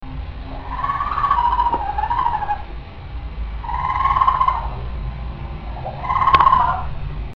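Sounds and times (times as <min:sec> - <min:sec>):
raccoon chattering: 0:00.5 - 0:02.8, 0:03.6 - 0:04.9, 0:05.7 - 0:07.0.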